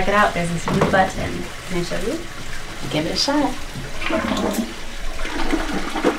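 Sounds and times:
toilet flushing: 0.0s - 6.1s
speech: 0.1s - 5.8s.

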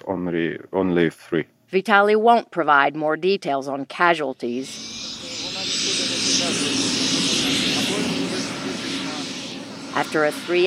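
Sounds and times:
speech: 0.1s - 5.1s, 10.0s - 10.6s
military helicopters taking off: 4.4s - 10.6s.

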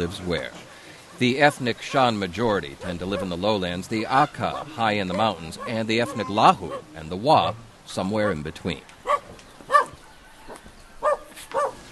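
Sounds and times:
speech: 0.0s - 0.6s, 1.2s - 9.0s
village dogs barking: 1.9s - 3.5s, 4.2s - 10.0s, 11.0s - 11.9s.

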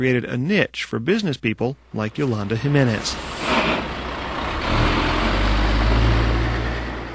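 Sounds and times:
speech: 0.0s - 3.4s
heavy trucks idling in an open border truck yard: 1.8s - 7.1s
broad hissing noise: 1.9s - 4.0s.

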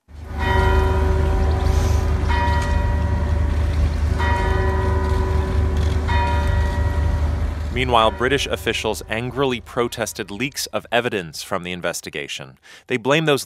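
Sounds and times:
church bells ringing in St. Anne's Square in Manchester UK: 0.1s - 11.2s
steady low rumble of outdoor ambience: 0.1s - 12.0s
speech: 7.8s - 13.4s.

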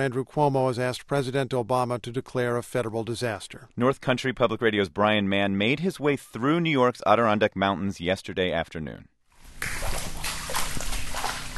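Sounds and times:
speech: 0.0s - 10.0s
person wading through silt and water in a flooded greenhouse: 9.4s - 11.5s.

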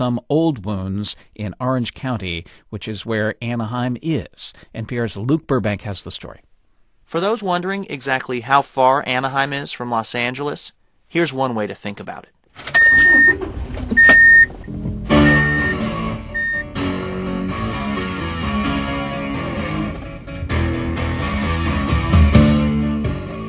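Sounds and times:
speech: 0.0s - 6.5s, 7.1s - 14.1s
music from car radio: 12.8s - 23.4s
short electronic car chimes: 15.2s - 16.8s.

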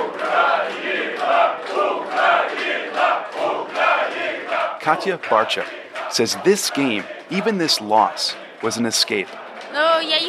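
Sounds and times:
crowd of football fans in a bar in Kyiv roaring and cheering: 0.0s - 10.2s
speech: 4.8s - 10.2s.

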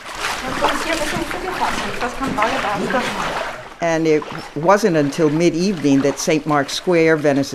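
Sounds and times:
footsteps wading through mid-calf-deep floodwater in Venice: 0.0s - 7.5s
speech: 0.9s - 7.5s.

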